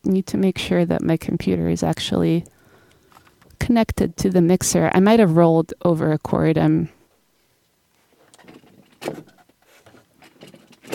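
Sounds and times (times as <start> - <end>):
speech: 0.0 - 2.5, 3.6 - 7.0, 9.0 - 9.4
chair being shifted around scraping and knocking: 8.3 - 10.9
sharp wooden clunk: 8.4 - 10.9.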